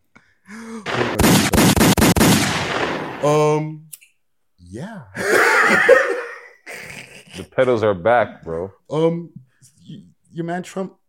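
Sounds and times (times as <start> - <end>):
gunfire sound effects: 0.8 - 3.4
speech: 3.2 - 3.8, 7.4 - 11.0
laughter: 5.2 - 7.8.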